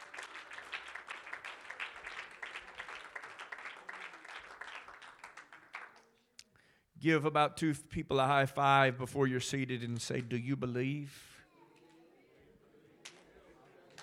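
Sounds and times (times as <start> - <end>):
church congregation clapping hands: 0.0 - 6.2, 9.8 - 10.8, 13.0 - 14.0
speech: 7.0 - 11.3.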